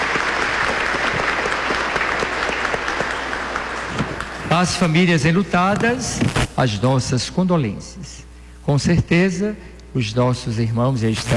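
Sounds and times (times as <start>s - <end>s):
crowd applauding: 0.0s - 5.0s
speech: 4.5s - 11.3s.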